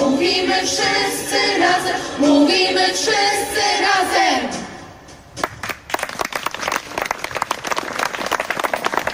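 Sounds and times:
speech: 0.2 - 4.7
applause from participants at an evening gathering: 5.6 - 9.1.

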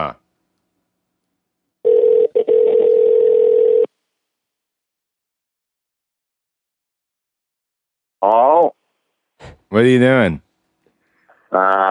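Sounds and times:
telephone dial tone as a phone call is placed: 1.9 - 3.9
speech: 9.7 - 10.5, 11.5 - 11.8.

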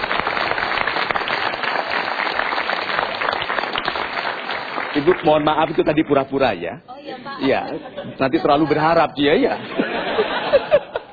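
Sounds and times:
audience applause at a motivational talk show: 0.0 - 6.1
speech: 5.0 - 10.4
laughter: 9.4 - 11.1.

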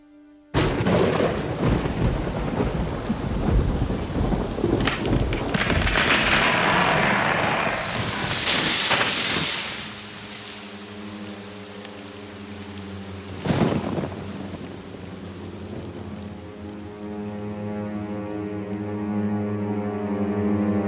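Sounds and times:
lightning striking a chestnut tree: 0.6 - 11.0, 13.4 - 14.6
thunder rumbling: 0.6 - 17.1
violent wind: 0.6 - 18.7
heavy rain in a violent storm: 0.6 - 20.8.

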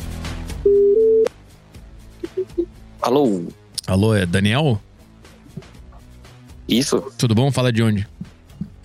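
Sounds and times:
telephone call ringing tone: 0.7 - 1.3
speech: 4.0 - 4.9, 6.7 - 8.2.

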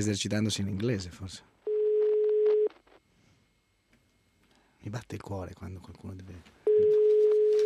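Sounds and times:
speech: 0.0 - 1.6, 4.8 - 7.0
telephone ringing tone: 1.6 - 2.8, 6.6 - 7.6.

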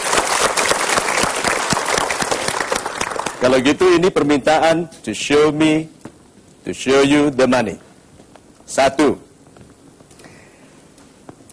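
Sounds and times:
audience at a talk applauding: 0.0 - 3.9
speech: 3.4 - 6.0, 6.7 - 7.9, 8.7 - 9.2.

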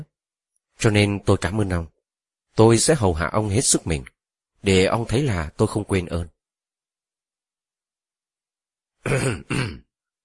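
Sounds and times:
speech: 0.8 - 1.9, 2.6 - 6.3, 9.0 - 9.8
man clearing his throat in embarrassment: 9.0 - 9.9.

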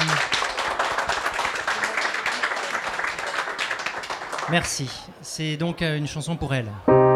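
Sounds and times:
audience applause at a live event: 0.0 - 5.1
speech: 4.5 - 7.0.

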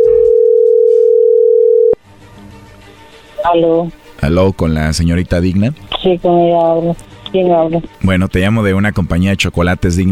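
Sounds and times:
telephone dial tone while dialing a number: 0.0 - 2.0
speech: 3.5 - 10.0.

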